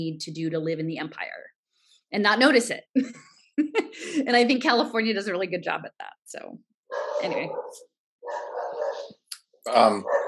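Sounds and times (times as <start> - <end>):
speech: 0.0 - 1.5, 2.1 - 8.5, 9.6 - 10.2
dog barking: 6.9 - 9.1, 9.9 - 10.2.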